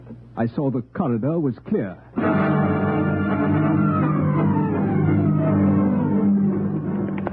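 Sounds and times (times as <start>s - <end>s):
speech: 0.4s - 2.6s
low sustained drone: 2.2s - 7.2s.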